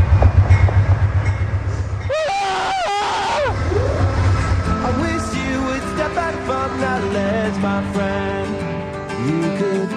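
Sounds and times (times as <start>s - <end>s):
train wheels rumbling rolling into station: 0.0s - 9.8s
train brakes squealing as train slows to stop at station: 0.5s - 8.4s.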